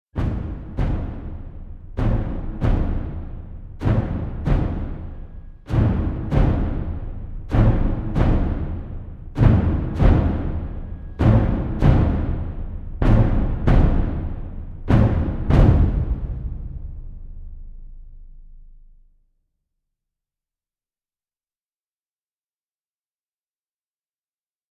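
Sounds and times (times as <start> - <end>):
war drums: 0.2 - 19.0.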